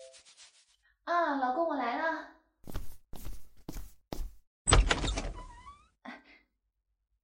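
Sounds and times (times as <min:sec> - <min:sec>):
speech: 0:01.1 - 0:02.2
footsteps at home: 0:02.6 - 0:04.4
door being opened at home: 0:04.7 - 0:05.8.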